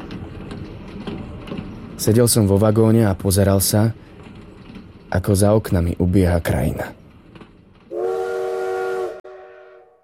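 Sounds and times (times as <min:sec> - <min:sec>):
train running on rails: 0:00.0 - 0:09.9
speech: 0:02.0 - 0:04.1, 0:05.1 - 0:07.0
train steam whistle blast: 0:07.9 - 0:10.0.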